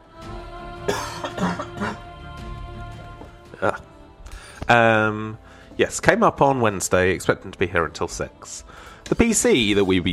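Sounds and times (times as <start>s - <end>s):
person coughing: 0.9s - 2.1s
speech: 3.6s - 3.9s, 5.8s - 10.1s.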